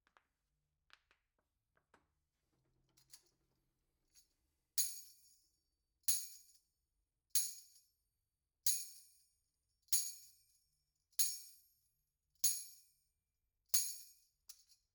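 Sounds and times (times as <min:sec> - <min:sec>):
tambourine: 0:04.2 - 0:06.7, 0:07.4 - 0:08.0, 0:08.7 - 0:13.1, 0:13.7 - 0:14.9.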